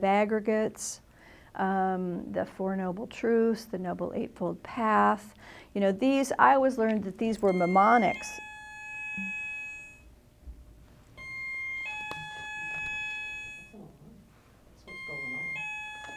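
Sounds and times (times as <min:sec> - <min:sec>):
speech: 0:00.0 - 0:01.0, 0:01.6 - 0:08.4
intercom buzzing in long electronic tones: 0:07.5 - 0:10.0, 0:11.2 - 0:13.8, 0:14.8 - 0:16.1.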